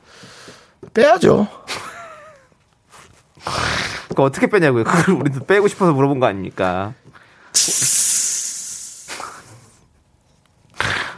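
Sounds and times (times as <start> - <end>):
speech: 0.5 - 1.8, 4.2 - 7.8
person hissing with their mouth imitating air escaping a tire: 3.4 - 4.1, 7.6 - 9.7, 10.8 - 11.1.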